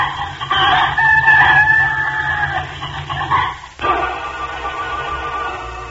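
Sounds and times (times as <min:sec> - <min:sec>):
hen clucking and squawking: 0:00.0 - 0:05.8.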